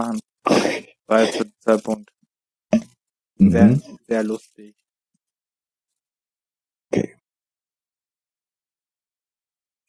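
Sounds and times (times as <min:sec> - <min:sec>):
speech: 0:00.0 - 0:02.8, 0:03.4 - 0:04.8, 0:06.9 - 0:07.2
burp: 0:02.7 - 0:04.0, 0:06.9 - 0:07.3.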